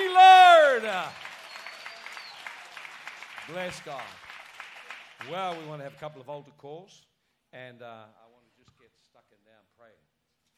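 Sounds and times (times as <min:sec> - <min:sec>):
audience applause: 0:00.0 - 0:06.1
speech: 0:03.5 - 0:04.3, 0:05.2 - 0:08.3.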